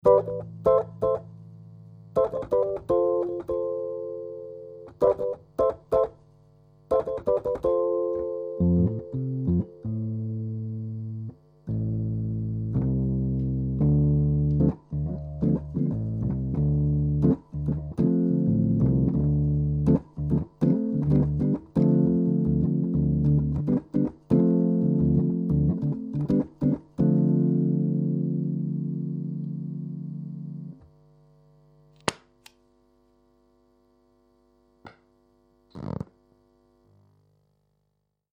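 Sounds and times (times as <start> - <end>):
Hohner Pianet M electric piano switch-off noises: 0.0 - 1.3, 2.2 - 6.2, 6.9 - 30.8.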